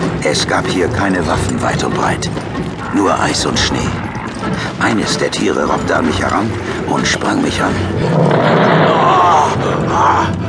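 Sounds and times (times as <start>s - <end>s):
speech: 0.2s - 10.4s
large fat sabre-toothed seal-like creature roaring: 8.0s - 10.4s.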